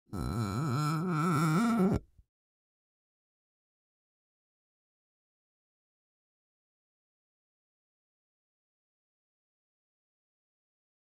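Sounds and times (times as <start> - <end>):
finger dragging on glass: 0.2 - 2.1.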